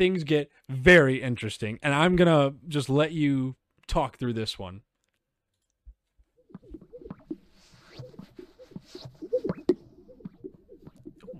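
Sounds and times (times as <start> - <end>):
speech: 0.0 - 4.9
Greater Sage-Grouse lek display bubbling pops and gurgling notes: 6.4 - 11.3.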